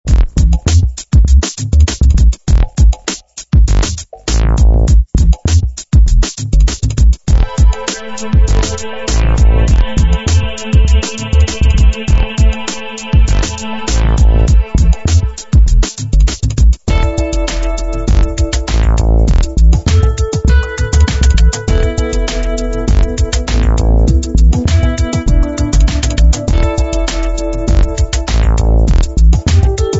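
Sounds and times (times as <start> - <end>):
bass music: 0.0 - 29.9.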